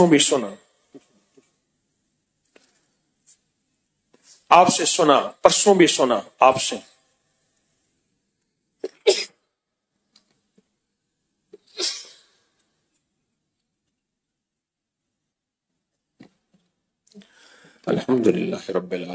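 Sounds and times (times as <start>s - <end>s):
speech: 0.0s - 0.7s, 4.5s - 6.9s, 9.0s - 9.3s, 17.8s - 19.1s
faint small sounds: 0.2s - 5.0s, 6.6s - 19.1s
person sneezing: 8.8s - 9.3s, 11.6s - 12.4s.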